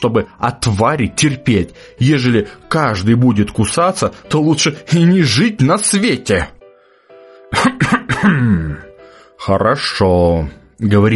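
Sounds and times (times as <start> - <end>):
speech: 0.0 - 6.6, 7.5 - 11.1
man coughing: 7.5 - 8.8.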